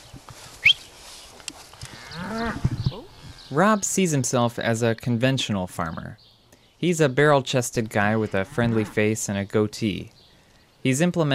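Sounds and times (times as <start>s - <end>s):
cow mooing on a farm in the Midwestern United States: 1.9s - 3.6s, 8.2s - 9.1s
speech: 3.5s - 10.2s, 10.8s - 11.3s.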